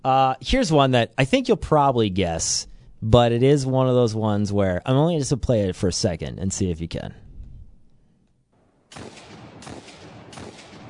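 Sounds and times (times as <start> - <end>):
speech: 0.0 - 7.2
heavy booming video game hand cannon gunshots: 8.9 - 10.8.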